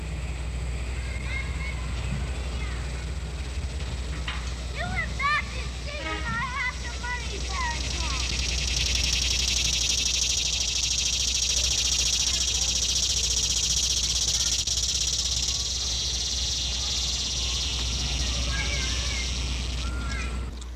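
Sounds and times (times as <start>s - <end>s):
low rumble: 0.0s - 20.7s
typical cicada shrilling in a high-pitched buzz: 2.4s - 20.5s
scattered chirps: 4.8s - 20.5s.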